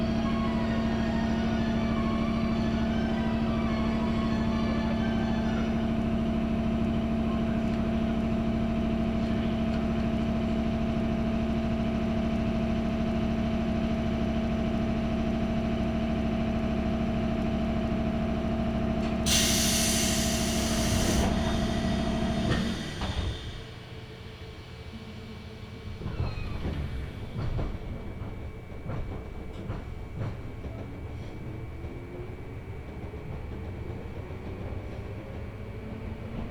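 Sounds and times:
local train motor whine and low rumble: 0.0s - 36.5s
brief loud hiss aboard a local train: 19.3s - 23.7s.

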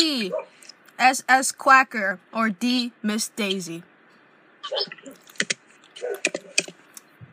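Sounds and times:
speech: 0.0s - 3.9s, 4.6s - 5.2s
clacking of keys on a computer keyboard: 5.1s - 6.8s.

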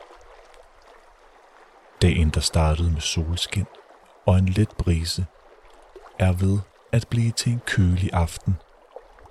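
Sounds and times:
gentle waves washing onto a beach on a cool evening at sunset: 0.0s - 9.3s
speech: 2.0s - 5.4s, 6.2s - 8.6s.

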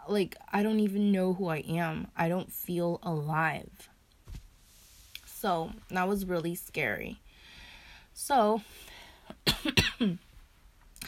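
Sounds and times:
speech: 0.1s - 3.9s, 5.4s - 7.2s, 8.2s - 8.9s, 9.6s - 10.3s
raspy coughs from one person: 9.4s - 10.2s.

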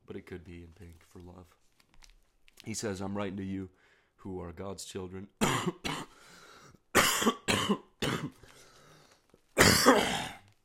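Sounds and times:
speech: 0.2s - 1.8s, 2.6s - 5.8s
person clearing throat: 5.4s - 6.1s, 7.0s - 8.4s, 9.6s - 10.5s
person coughing: 5.4s - 6.2s, 6.9s - 8.4s, 9.6s - 10.5s.

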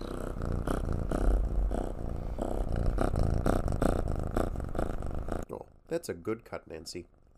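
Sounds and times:
cat purring: 0.0s - 7.3s
speech: 5.9s - 7.3s.

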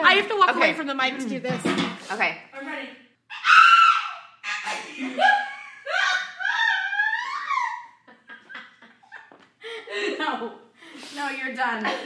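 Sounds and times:
speech: 0.1s - 3.0s, 5.0s - 5.4s, 11.3s - 12.0s
human voice imitating an eagle's screech: 3.3s - 4.7s
laughter: 4.4s - 10.5s, 11.8s - 12.0s.

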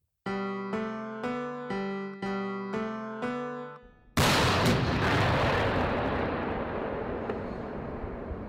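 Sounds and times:
short jingle of repeated synth chords: 0.3s - 4.2s
loud booming cannon blast: 4.2s - 8.4s.

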